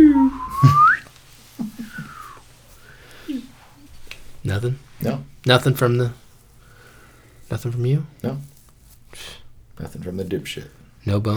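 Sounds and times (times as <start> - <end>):
person whistling upward glides in imitation of a slide whistle: 0.0 - 1.1, 1.9 - 2.4
speech: 5.5 - 6.2, 7.5 - 8.5, 9.1 - 11.3.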